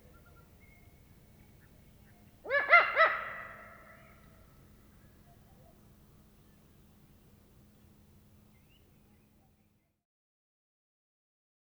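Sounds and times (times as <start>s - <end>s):
female Eurasian eagle-owl cackle: 2.5s - 4.3s.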